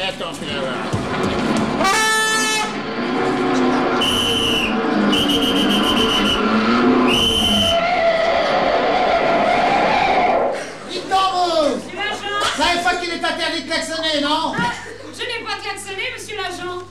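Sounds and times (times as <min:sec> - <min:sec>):
busy noisy background: 0:00.0 - 0:16.9
speech: 0:00.1 - 0:01.9
laughter: 0:00.2 - 0:01.8, 0:08.0 - 0:13.4, 0:14.4 - 0:15.7
car horn honking: 0:01.8 - 0:07.8.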